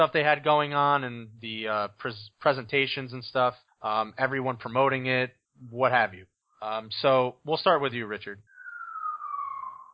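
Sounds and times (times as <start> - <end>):
speech: 0.0 - 8.5
emergency vehicle siren wail passing: 8.6 - 9.9.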